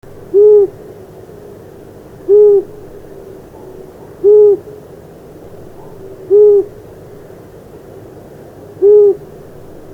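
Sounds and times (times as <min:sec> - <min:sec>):
long-eared owl calling: 0:00.3 - 0:00.8, 0:02.3 - 0:02.8, 0:03.6 - 0:04.8, 0:05.8 - 0:06.8, 0:08.8 - 0:09.3.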